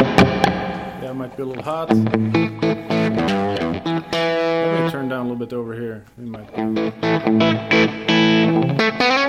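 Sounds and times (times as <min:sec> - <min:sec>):
distorted electric guitar chord stabs played direct into an amp with reverb: 0:00.0 - 0:05.0, 0:06.5 - 0:09.2
speech: 0:01.1 - 0:03.9, 0:04.9 - 0:08.9.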